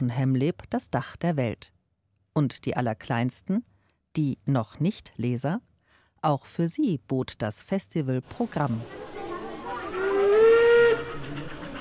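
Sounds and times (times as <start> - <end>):
speech: 0.0 - 1.8, 2.4 - 9.1
steam locomotive whistle with breathy hiss: 8.9 - 11.7.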